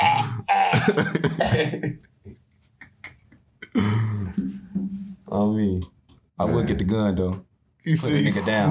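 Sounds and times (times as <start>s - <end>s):
person coughing in harsh raspy bursts: 0.6s - 1.8s
speech: 0.8s - 2.1s, 3.8s - 4.5s, 5.3s - 8.6s.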